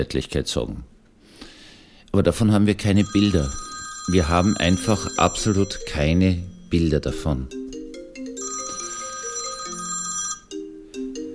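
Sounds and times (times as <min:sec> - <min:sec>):
speech: 0:00.0 - 0:01.0, 0:02.1 - 0:07.6
telephone ringing with melodic electronic ringtone: 0:02.8 - 0:11.3.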